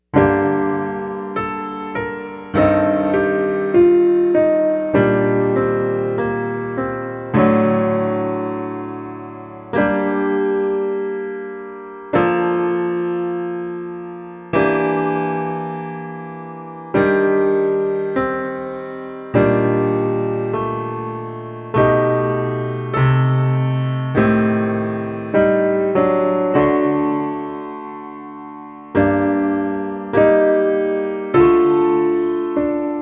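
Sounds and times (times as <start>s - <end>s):
piano accompaniment: 0.0s - 33.0s.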